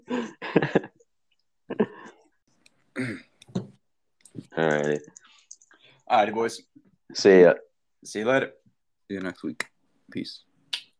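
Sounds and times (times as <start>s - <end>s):
person coughing: 3.0s - 3.4s
speech: 4.6s - 5.1s, 6.1s - 10.5s.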